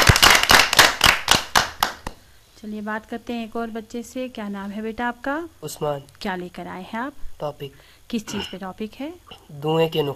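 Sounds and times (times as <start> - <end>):
children in a classroom clapping: 0.0 - 2.2
speech: 2.6 - 10.1.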